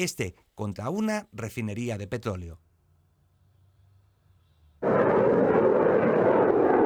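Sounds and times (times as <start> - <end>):
speech: 0.0 - 2.6
missile test launch rocket blast roar: 4.8 - 6.8.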